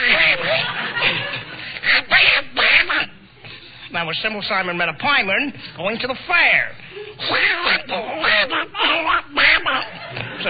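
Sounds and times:
laughter: 0.2s - 1.8s, 8.3s - 10.4s
person imitating a cartoon duck with raspy quacking syllables: 1.8s - 3.2s, 7.2s - 10.0s
speech: 4.0s - 9.4s.

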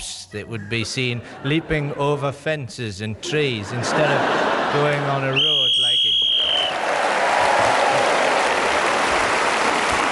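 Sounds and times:
speech: 0.3s - 5.6s
laughter: 0.4s - 6.0s, 7.3s - 8.4s
applause from a sizable audience: 4.4s - 10.0s
whistle-like tone: 5.4s - 6.8s.

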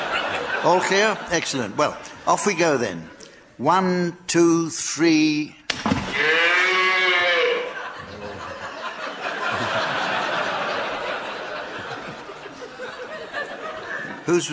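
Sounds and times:
speech: 0.6s - 6.3s, 14.3s - 14.5s
human voices imitating a cow mooing in a game: 6.2s - 7.8s
scattered chuckles and laughter: 7.6s - 14.2s.

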